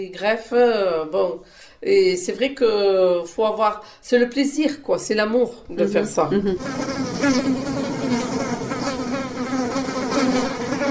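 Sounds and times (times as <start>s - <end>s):
speech: 0.0s - 7.9s
swarm of many honeybees buzzing: 5.8s - 10.8s.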